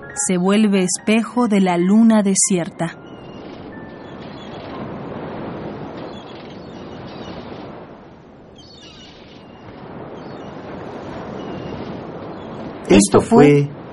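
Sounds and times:
speech: 0.2 - 3.1, 12.9 - 13.8
ocean surf: 3.1 - 13.9.

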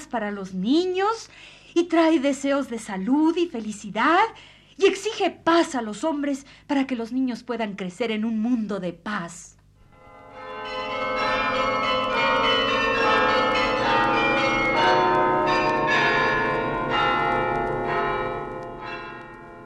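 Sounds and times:
speech: 0.1 - 9.5
church bells pealing to welcome the new year: 10.0 - 19.6.

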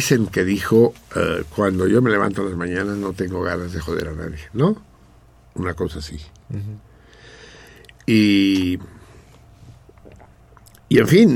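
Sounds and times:
speech: 0.0 - 4.9, 5.6 - 6.9, 8.1 - 9.0, 10.9 - 11.3
low steady hum: 0.0 - 11.3
swallowing saliva: 6.4 - 10.9
soft wet mouth clicks and squishes: 7.1 - 10.9.

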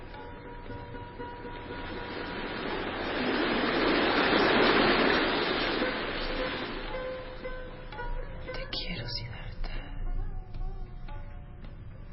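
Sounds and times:
flowing river water: 0.0 - 9.2.

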